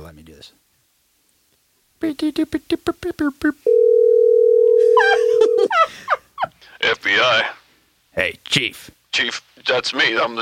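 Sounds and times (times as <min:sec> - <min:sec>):
speech: 0:00.1 - 0:00.6, 0:02.0 - 0:04.0, 0:06.8 - 0:07.6, 0:08.2 - 0:10.4
steady unbroken telephone tone: 0:03.7 - 0:05.7.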